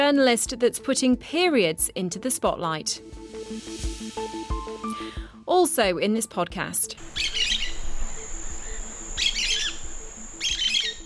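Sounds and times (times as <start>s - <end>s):
speech: 0.1s - 4.5s, 5.6s - 7.4s
small domestic bird chirping: 7.0s - 11.0s.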